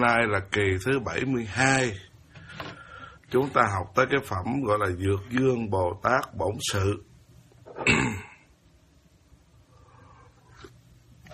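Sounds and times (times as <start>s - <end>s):
speech: 0.0s - 2.1s, 3.3s - 7.1s, 7.8s - 8.3s
quiet breathing: 2.2s - 3.3s, 9.4s - 10.8s
faint throat sound: 7.7s - 8.5s
single loud harsh cough: 7.8s - 8.4s.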